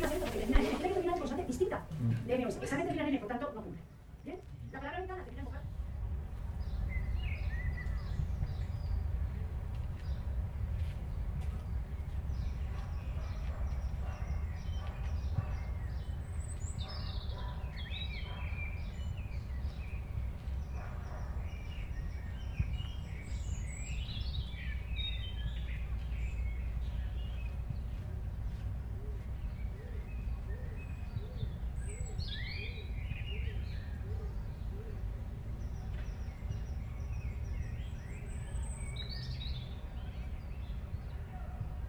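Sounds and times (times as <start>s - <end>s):
loud voices in a city: 0.0s - 3.4s
small birds chirping and twittering: 0.0s - 41.5s
low traffic rumble in Madrid: 0.0s - 41.8s.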